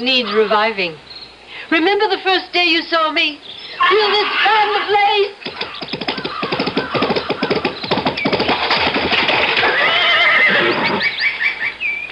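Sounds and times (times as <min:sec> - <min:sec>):
speech: 0:00.0 - 0:05.4
horse neighing: 0:03.8 - 0:11.7.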